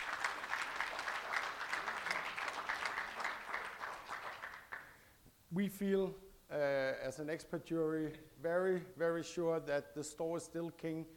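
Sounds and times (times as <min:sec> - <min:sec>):
crowd applause: 0:00.0 - 0:05.0
speech: 0:05.5 - 0:11.1.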